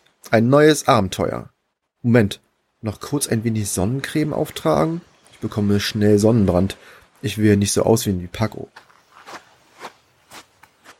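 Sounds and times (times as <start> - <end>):
speech: 0.3 - 8.9
footsteps in boots crunching through beach sand: 8.7 - 10.9.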